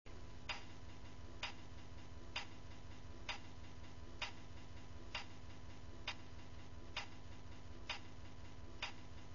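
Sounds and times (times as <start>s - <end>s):
clock: 0.4s - 9.3s.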